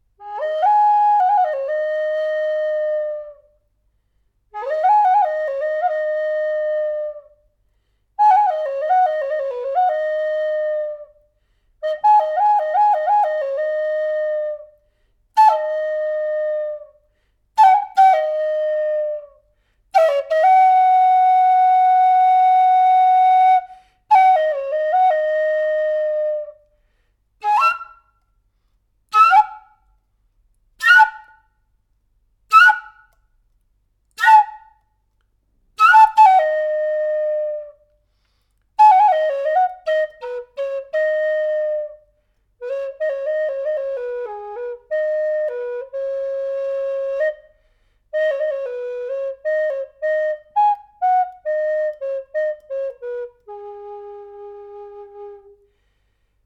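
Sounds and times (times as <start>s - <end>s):
Native American style flute tuned to G sharp at 440 Hz: 0.2s - 3.6s, 4.6s - 7.5s, 8.2s - 11.2s, 11.8s - 14.8s, 15.4s - 17.0s, 17.6s - 26.7s, 27.4s - 28.2s, 29.1s - 29.8s, 30.8s - 31.4s, 32.5s - 33.2s, 34.1s - 34.8s, 35.8s - 37.9s, 38.8s - 47.6s, 48.2s - 55.7s.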